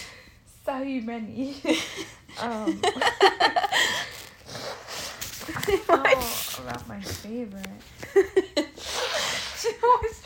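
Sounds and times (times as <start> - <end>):
speech: 0.7 - 4.1, 5.7 - 10.2
nose blowing: 4.1 - 5.2, 8.7 - 9.7.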